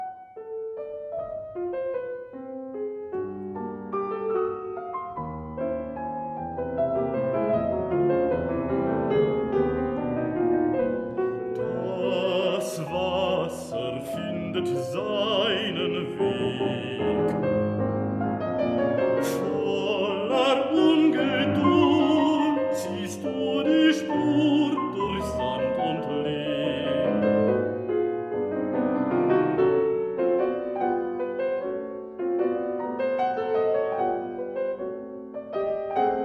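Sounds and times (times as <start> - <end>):
piano accompaniment: 0.0 - 36.2
baritone singing lieder: 11.5 - 17.7, 19.1 - 27.7.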